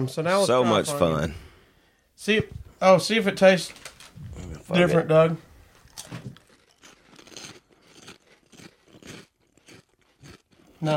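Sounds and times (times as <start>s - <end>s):
speech: 0.0s - 1.5s, 2.2s - 5.5s, 10.8s - 10.9s
crunching of flaming hot Funyun snacks being bitten and chewed: 5.7s - 10.9s.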